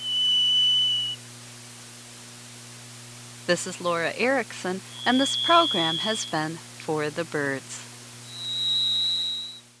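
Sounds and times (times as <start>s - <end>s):
Varied Thrush singing a sustained whistled tone: 0.0s - 1.2s, 4.9s - 6.6s, 8.2s - 9.7s
faint low hum: 0.0s - 9.7s
speech: 3.5s - 7.9s.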